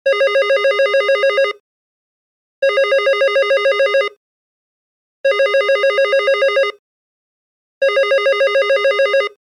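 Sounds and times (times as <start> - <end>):
landline telephone ringing: 0.1 - 1.6, 2.6 - 4.2, 5.3 - 6.8, 7.8 - 9.4.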